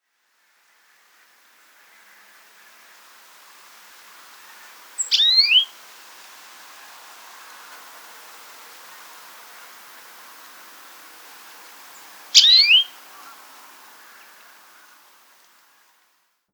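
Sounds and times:
quiet background hiss: 0.0s - 16.5s
European greenfinch Chloris chloris giving descending chirpy notes: 5.0s - 5.7s, 12.4s - 12.9s.

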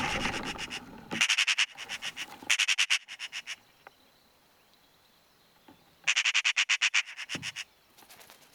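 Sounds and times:
Eurasian magpie chattering: 0.1s - 3.6s, 6.1s - 7.7s.

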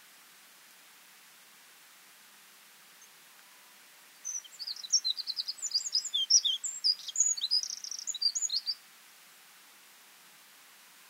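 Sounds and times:
light hiss: 0.0s - 11.0s
Eurasian wren Troglodytes troglodytes song of sharp high notes and trills: 3.0s - 8.8s.

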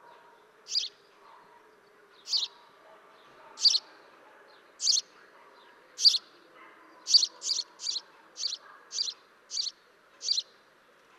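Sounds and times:
house sparrow Passer domesticus chirping: 0.0s - 10.6s.

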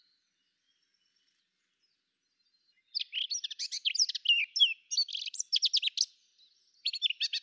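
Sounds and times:
Eurasian blackcap Sylvia atricapilla warbling song: 2.9s - 6.1s.

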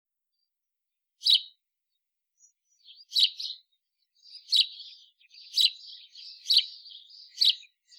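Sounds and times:
house sparrow Passer domesticus giving loud single chirps: 1.2s - 7.9s
quieter chattering twitter of house sparrow: 2.4s - 7.9s.

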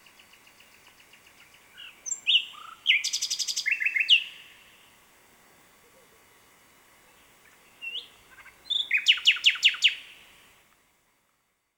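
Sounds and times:
common nightingale Luscinia megarhynchos singing: 0.0s - 4.9s, 7.1s - 10.2s.

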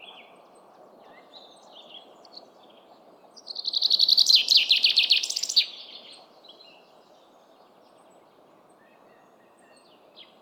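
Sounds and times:
common chaffinch Fringilla coelebs singing: 3.5s - 6.1s.

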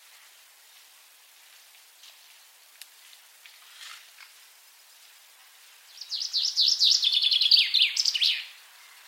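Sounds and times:
Fringilla coelebs common chaffinch singing: 4.6s - 9.0s.

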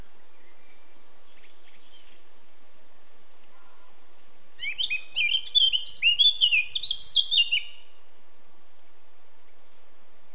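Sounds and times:
Eurasian blackcap Sylvia atricapilla warbling song: 0.0s - 2.3s, 4.6s - 8.2s.

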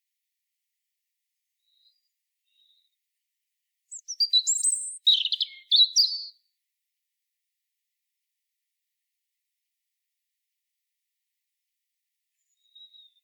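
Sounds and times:
European robin twittering: 3.9s - 6.4s, 12.5s - 13.2s.

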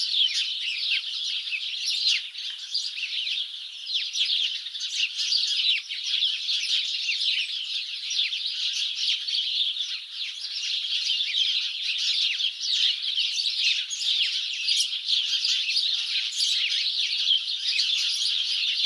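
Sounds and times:
house sparrows Passer domesticus chirping in a flock: 0.0s - 18.8s.

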